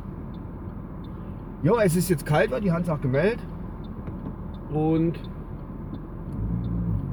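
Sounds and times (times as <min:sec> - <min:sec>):
low steady road rumble of traffic: 0:00.0 - 0:07.1
speech: 0:01.6 - 0:03.5, 0:04.7 - 0:05.3.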